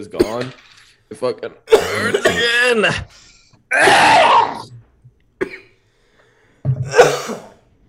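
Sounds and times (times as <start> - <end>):
speech: 0.0 - 4.8
person coughing hard after eating a very spicy chip: 1.7 - 2.7, 5.4 - 5.8, 6.8 - 7.6.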